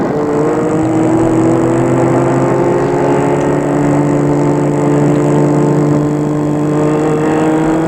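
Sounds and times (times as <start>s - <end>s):
chauffeur-driven car engine humming: 0.0s - 7.8s.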